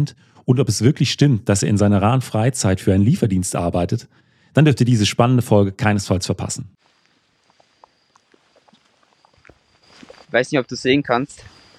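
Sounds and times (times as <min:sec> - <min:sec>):
speech: 0:00.0 - 0:06.8, 0:10.3 - 0:11.6
hooves of a small zebra herd trotting away over the ground: 0:06.8 - 0:10.4.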